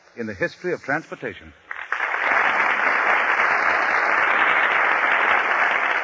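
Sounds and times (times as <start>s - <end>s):
speech: 0.2s - 1.6s
large studio audience applause: 1.7s - 6.0s.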